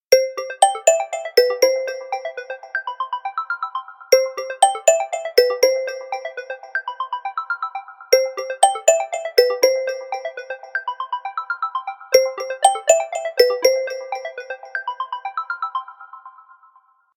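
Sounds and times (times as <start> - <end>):
phone ringtone: 0.1 - 3.0, 4.1 - 7.2, 8.1 - 11.4, 12.1 - 15.0.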